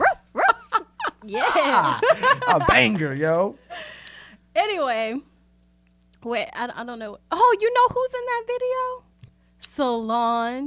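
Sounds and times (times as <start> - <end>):
person imitating a dog with sharp barks: 0.0 - 0.8
laughter: 0.4 - 3.5
speech: 1.3 - 3.6, 4.6 - 5.3, 6.2 - 9.1, 9.8 - 10.6.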